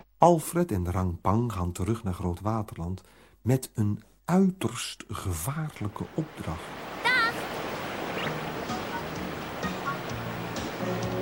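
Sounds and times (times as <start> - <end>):
speech: 0.2 - 6.9
river water rushing as a boat crosses: 5.2 - 11.2.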